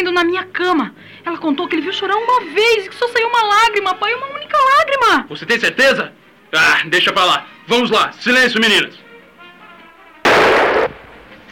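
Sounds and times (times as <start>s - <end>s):
speech: 0.0s - 9.0s
faint hiss: 0.0s - 11.5s
gunshot: 10.2s - 11.5s.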